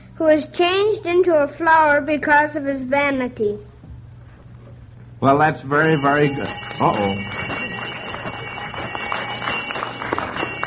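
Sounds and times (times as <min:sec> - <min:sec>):
speech: 0:00.2 - 0:03.7, 0:05.2 - 0:07.5
bell ringing to end a quiz: 0:05.7 - 0:10.6.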